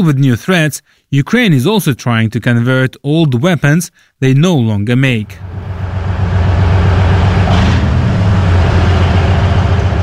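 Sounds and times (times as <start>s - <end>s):
speech: 0.0s - 5.7s
Soviet wheeled armored anti-aircraft missile system vehicle engine droning: 5.2s - 10.0s.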